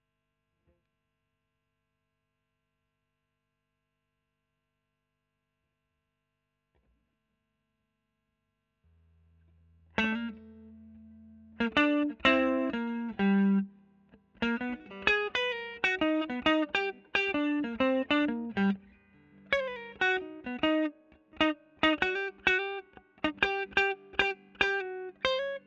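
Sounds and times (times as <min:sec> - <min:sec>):
electric guitar solo recorded with Royer microphone: 0:10.0 - 0:25.6.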